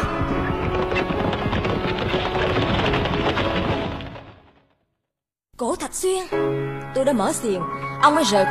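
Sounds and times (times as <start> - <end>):
horse hooves pounding in a rapid gallop: 0.0 - 4.7
speech: 6.0 - 8.4.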